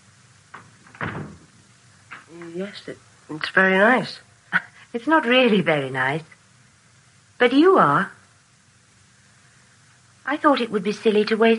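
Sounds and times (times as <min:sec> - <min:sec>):
bedroom door closing: 0:00.5 - 0:02.3
speech: 0:02.3 - 0:04.3, 0:04.9 - 0:06.4, 0:07.4 - 0:08.2, 0:10.3 - 0:11.5.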